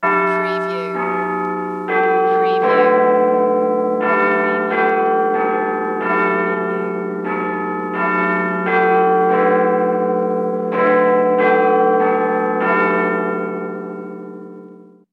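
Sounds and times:
Big Ben clock bell chiming: 0.0s - 14.9s.

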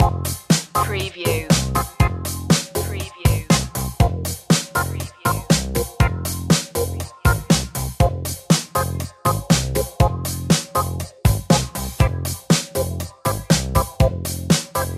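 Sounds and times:
electrowave loop: 0.0s - 14.9s.

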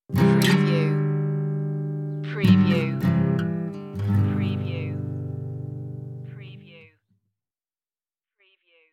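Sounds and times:
acoustic guitar strum: 0.1s - 6.6s.

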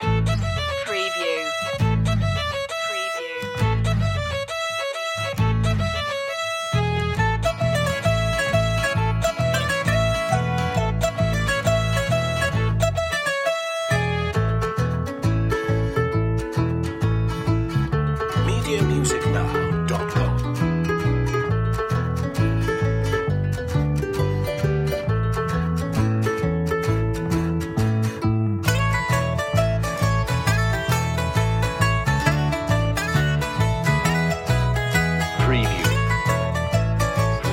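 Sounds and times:
old Irish tavern music without drums: 0.0s - 37.5s.

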